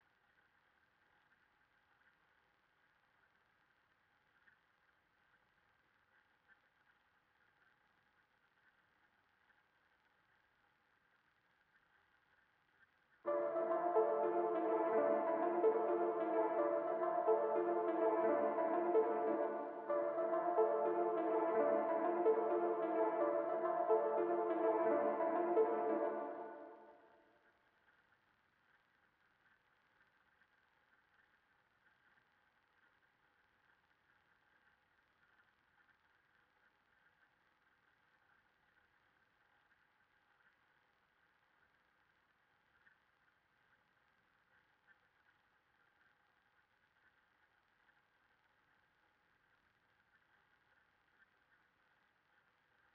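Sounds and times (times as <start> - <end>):
accent arpeggiated synth melody loop in D minor: 13.3 - 27.1.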